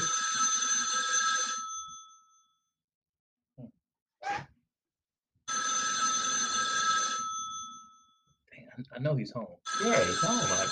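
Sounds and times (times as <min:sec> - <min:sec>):
telephone ringback tone on an outgoing call: 0:00.0 - 0:02.6, 0:05.5 - 0:08.2, 0:09.7 - 0:10.6
speech: 0:08.8 - 0:10.6.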